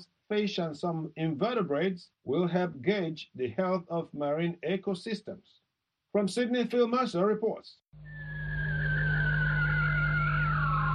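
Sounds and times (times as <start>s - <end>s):
speech: 0.0s - 8.2s
bearded seal song underwater, descending warbling whistle: 8.1s - 10.9s.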